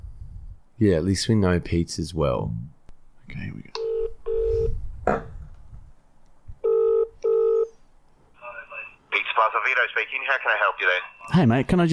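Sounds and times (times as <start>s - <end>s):
speech: 0.8s - 3.8s, 5.1s - 5.3s, 9.9s - 11.9s
telephone dialing tones before a call to a pizza shop: 3.8s - 4.7s, 6.6s - 7.7s.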